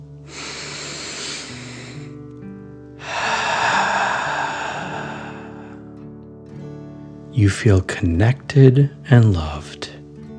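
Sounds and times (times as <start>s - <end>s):
soft steady music: 0.0s - 10.3s
deep breath in and out: 0.2s - 2.2s, 3.0s - 6.0s
speech: 7.4s - 9.8s.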